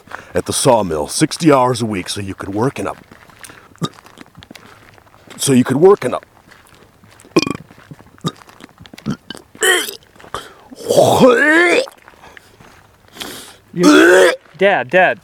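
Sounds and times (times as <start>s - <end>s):
speech: 0.4s - 3.1s, 5.5s - 6.3s, 14.6s - 15.2s
scattered clicks and small throaty sounds: 7.3s - 10.6s
long loud gurgling burp: 7.4s - 7.6s, 9.0s - 10.0s, 10.8s - 12.0s, 13.8s - 14.4s.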